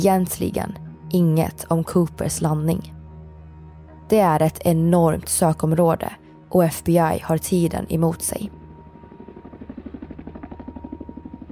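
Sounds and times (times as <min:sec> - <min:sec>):
speech: 0:00.0 - 0:03.0, 0:04.1 - 0:08.6
low search helicopter engine drone: 0:07.6 - 0:11.5
search helicopter rotor flying overhead: 0:08.6 - 0:11.5.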